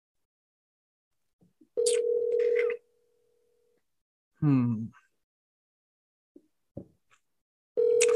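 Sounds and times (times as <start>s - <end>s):
electronic phone call ringing tone: 1.8s - 2.8s, 7.8s - 8.1s
person speaking: 4.4s - 5.0s.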